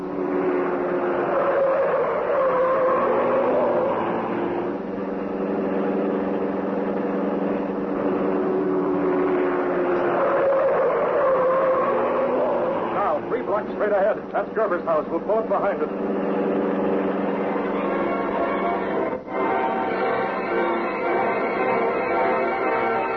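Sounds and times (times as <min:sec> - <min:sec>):
fast car engine roaring while speeding through city streets: 0:00.0 - 0:23.1
speech: 0:13.8 - 0:16.3.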